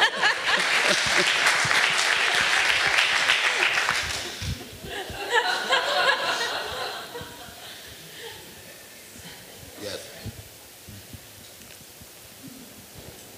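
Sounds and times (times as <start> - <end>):
scattered laughter: 0.0 - 3.0, 4.0 - 7.9
audience applause: 0.0 - 7.8
speech: 0.9 - 1.5
murmuring: 4.3 - 10.4.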